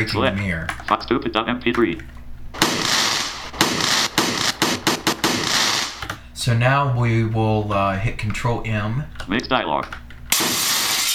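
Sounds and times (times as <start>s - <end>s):
speech: 0.0s - 2.2s, 6.4s - 10.0s
fireworks exploding: 2.6s - 6.0s.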